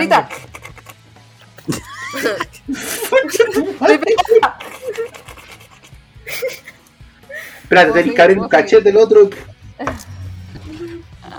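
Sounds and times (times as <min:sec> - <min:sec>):
speech: 0:00.0 - 0:00.6, 0:01.6 - 0:05.2, 0:07.7 - 0:09.5
laughter: 0:00.0 - 0:07.8
wet mouth noises imitating a dog lapping water: 0:00.2 - 0:02.5, 0:04.6 - 0:06.1, 0:09.8 - 0:11.3
low humming vocal tones: 0:09.9 - 0:11.3.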